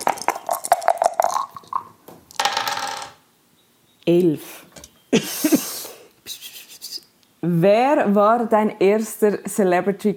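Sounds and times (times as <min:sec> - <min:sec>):
three small dice rattling onto a hard surface: 0:00.0 - 0:03.2
speech: 0:04.1 - 0:05.6, 0:07.4 - 0:10.1.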